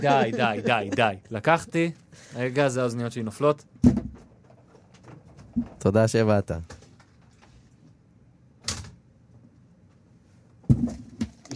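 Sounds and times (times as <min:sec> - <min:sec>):
laughter: 0:00.0 - 0:01.3
speech: 0:00.0 - 0:04.0, 0:05.6 - 0:06.8
door closing sound effect with sharp wooden impacts: 0:03.8 - 0:04.3.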